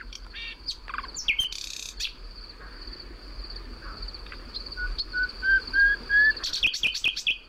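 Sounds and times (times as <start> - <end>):
nightingale singing with whistles and trills: 0.0 - 3.0, 3.7 - 7.4
steady high insect drone: 0.0 - 7.4.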